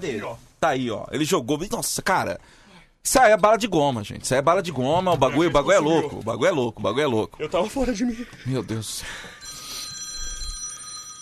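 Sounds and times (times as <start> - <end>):
speech: 0.0 - 9.4
telephone ringing with a bright electronic trill: 8.3 - 11.2.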